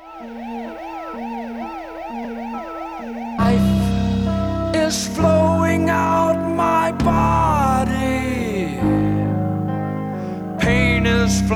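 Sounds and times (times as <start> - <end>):
emergency vehicle siren wails inside a rock song: 0.0 - 9.4
speech: 0.2 - 0.6, 4.9 - 5.9
rock song: 3.3 - 11.5.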